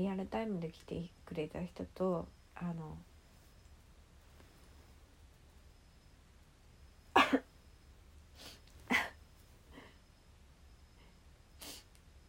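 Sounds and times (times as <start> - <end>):
speech: 0.0 - 3.1
sniffling from a stuffed-up nose: 8.3 - 10.0, 11.6 - 12.0.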